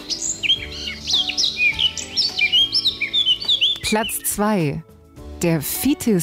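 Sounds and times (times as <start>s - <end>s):
Eurasian blackcap singing: 0.0s - 4.8s
speech: 3.9s - 6.2s.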